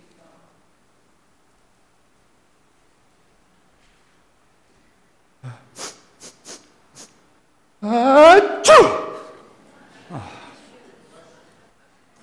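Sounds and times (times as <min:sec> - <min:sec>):
person fake sneezing at a church worship service: 0:05.4 - 0:07.2, 0:07.8 - 0:09.4
person sniffing: 0:05.4 - 0:07.2.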